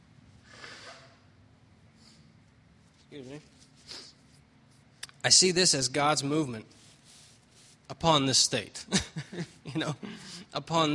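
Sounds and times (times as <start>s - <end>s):
speech: 3.1s - 4.0s, 5.2s - 6.8s, 8.0s - 10.9s
person blowing nose: 3.8s - 4.2s.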